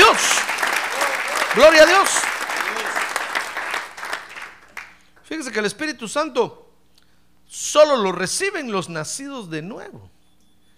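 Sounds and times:
crowd applauding: 0.0 - 5.2
speech: 1.6 - 2.2, 5.3 - 6.6, 7.5 - 10.2.

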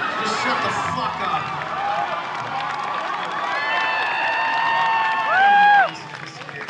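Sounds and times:
concert crowd yelling out requests: 0.0 - 5.9
loud rising whoop: 1.7 - 5.9.

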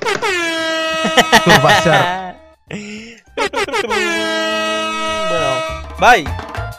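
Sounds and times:
loud air horn blasts: 0.1 - 2.1, 3.8 - 6.1
laughter: 0.9 - 4.4
speech: 1.2 - 2.8, 3.5 - 4.6, 6.0 - 6.5.

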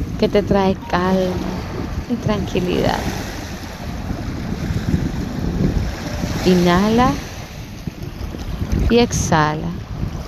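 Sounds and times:
ocean surf: 0.0 - 10.2
wind: 0.0 - 10.2
speech: 0.2 - 3.2, 6.4 - 7.3, 8.9 - 9.8.

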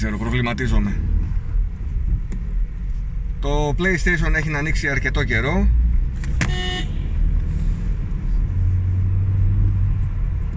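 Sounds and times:
speech: 0.0 - 1.2, 3.4 - 6.3
low rumble of a car engine in traffic: 0.0 - 10.5
car horn honk in traffic: 6.4 - 7.1.

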